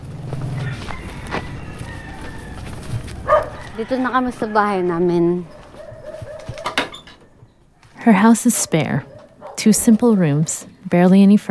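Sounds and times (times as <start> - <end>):
night breeze blowing through banana trees: 0.0 - 11.4
rooster crowing: 0.4 - 6.9
speech: 3.8 - 5.6, 8.0 - 11.4.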